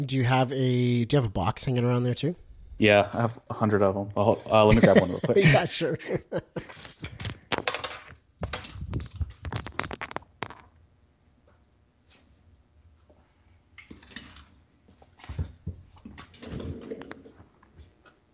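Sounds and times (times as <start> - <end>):
speech: 0.0 - 7.3
laughter: 4.7 - 6.9
rustling and plastic clicking of earphones being handled and removed: 6.6 - 10.8, 13.8 - 18.3.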